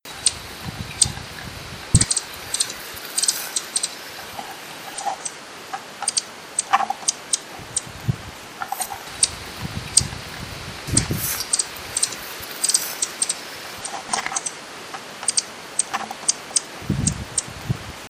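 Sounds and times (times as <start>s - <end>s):
Horned Sungem bird calling: 0.0s - 17.5s.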